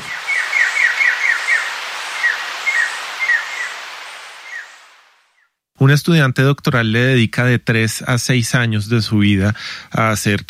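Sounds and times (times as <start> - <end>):
scarlet jay trilling: 0.0 - 5.5
soft hiss: 0.0 - 6.1, 6.9 - 10.4
speech: 5.8 - 10.4.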